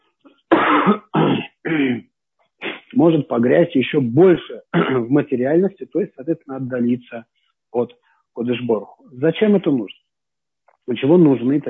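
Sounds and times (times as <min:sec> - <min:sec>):
loud harsh coughs with throat-clearing quality: 0:00.5 - 0:02.0, 0:04.6 - 0:05.2
speech: 0:00.8 - 0:01.1, 0:03.0 - 0:10.0, 0:10.9 - 0:11.6.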